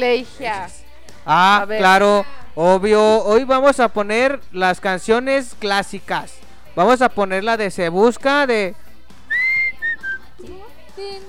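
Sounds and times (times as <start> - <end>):
speech: 0.0 - 8.8
person whistling a tune: 9.3 - 10.3.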